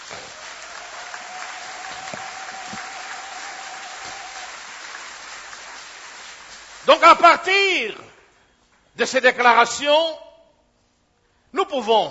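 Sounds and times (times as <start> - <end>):
audience applause at a sermon: 0.0 - 7.2
speech: 6.8 - 8.1, 9.0 - 10.2, 11.6 - 12.0.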